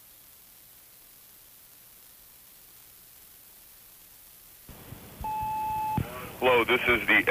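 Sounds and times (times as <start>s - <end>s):
tape hiss of a tape recording: 0.0s - 7.2s
answering machine sustained beep: 5.2s - 6.1s
speech: 6.4s - 7.2s.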